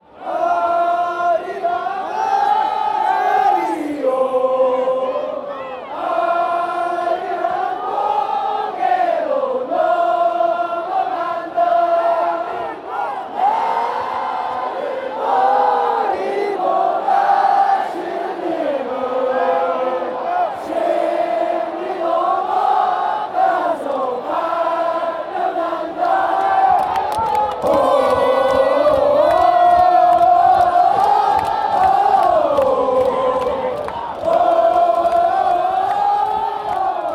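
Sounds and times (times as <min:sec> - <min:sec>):
football fans chanting: 0:00.0 - 0:37.1.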